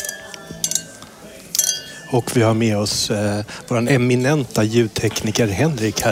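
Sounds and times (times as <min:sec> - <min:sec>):
glasses clinking in a Christmas toast: 0:00.0 - 0:02.6
faint murmur: 0:00.0 - 0:06.1
speech: 0:02.1 - 0:06.1.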